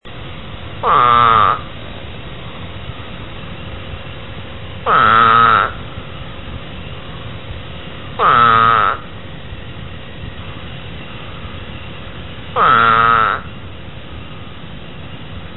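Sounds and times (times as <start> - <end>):
steady background hum: 0.0 - 15.5
eastern spadefoot toad giving moaning bleat-like calls: 0.8 - 1.8, 4.8 - 9.8, 10.4 - 14.0.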